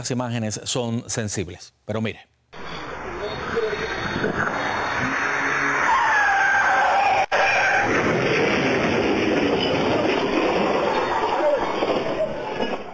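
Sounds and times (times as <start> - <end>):
speech: 0.0 - 2.4
loud steady roadway noise: 2.6 - 12.9
speeding car's tires squealing in a skid: 3.8 - 8.2.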